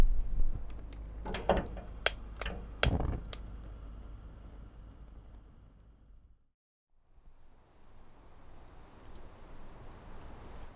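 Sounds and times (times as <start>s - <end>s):
kettle heating water with a soft steady rushing hiss: 0.2s - 6.2s
sharp clicks and knocks: 0.6s - 3.8s.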